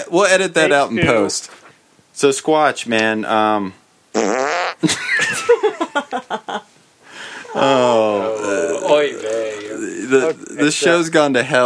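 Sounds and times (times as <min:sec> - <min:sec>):
speech: 0:00.1 - 0:06.7, 0:07.5 - 0:11.6
loud sputtering fart: 0:04.1 - 0:05.0
laughter: 0:04.8 - 0:06.7.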